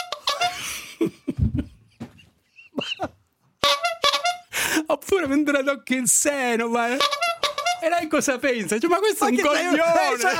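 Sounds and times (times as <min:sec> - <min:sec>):
squeaky toy horn honking: 0:00.0 - 0:00.6, 0:03.6 - 0:04.5, 0:06.9 - 0:07.9
people laughing and giggling: 0:00.4 - 0:03.2, 0:09.5 - 0:10.3
speech: 0:05.1 - 0:10.3.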